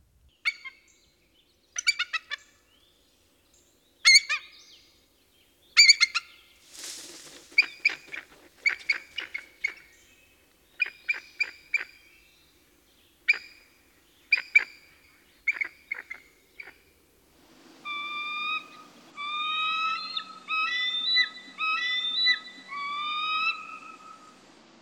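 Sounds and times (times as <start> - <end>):
faint hiss: 0.0 - 24.8
eagle calling in cackling bursts: 5.8 - 12.2, 13.2 - 17.0, 17.8 - 24.4.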